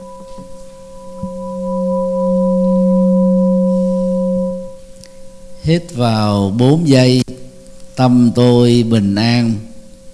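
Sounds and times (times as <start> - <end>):
meditation bell ringing: 0.0 - 8.0
speech: 5.7 - 7.2, 8.0 - 9.7.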